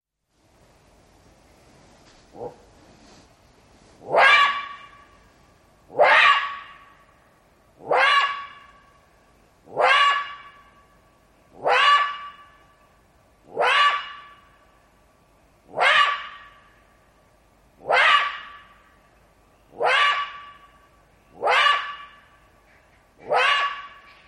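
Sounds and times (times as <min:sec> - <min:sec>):
jackal calls: 0:04.0 - 0:05.2, 0:05.9 - 0:07.0, 0:07.8 - 0:08.7, 0:09.7 - 0:10.7, 0:11.6 - 0:12.6, 0:13.5 - 0:14.4, 0:15.7 - 0:16.7, 0:17.8 - 0:18.8, 0:19.7 - 0:20.7, 0:21.3 - 0:24.2.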